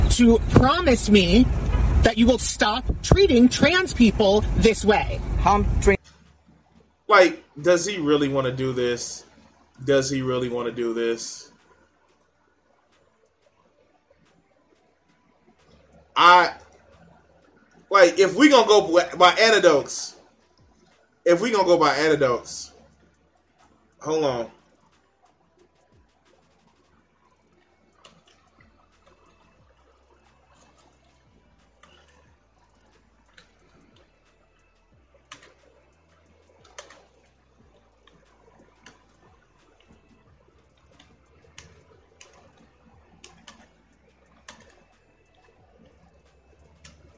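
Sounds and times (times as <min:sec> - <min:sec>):
faint low hum: 0:00.0 - 0:47.1
speech: 0:00.2 - 0:06.0, 0:07.1 - 0:11.5, 0:16.2 - 0:16.6, 0:17.9 - 0:20.2, 0:21.2 - 0:22.7, 0:24.0 - 0:24.6
typing on a computer keyboard: 0:36.6 - 0:37.2.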